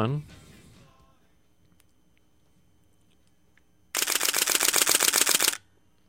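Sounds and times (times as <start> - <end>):
speech: 0.0 - 0.4
camera shutter firing in a rapid continuous burst: 4.0 - 5.6.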